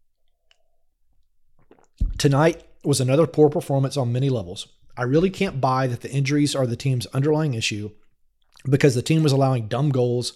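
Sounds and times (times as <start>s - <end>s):
soft slurp of a sip: 1.6s - 2.0s
faint mouth noises: 1.6s - 2.3s
speech: 2.2s - 8.0s, 8.6s - 10.3s.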